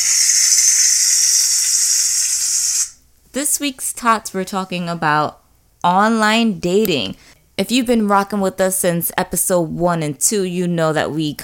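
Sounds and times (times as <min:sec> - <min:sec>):
tater tots sizzling while frying in hot oil: 0:00.0 - 0:03.0
speech: 0:03.4 - 0:11.4.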